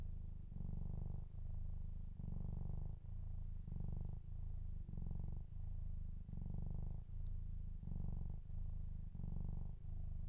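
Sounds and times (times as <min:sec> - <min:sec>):
cat purring: 0:00.0 - 0:10.2.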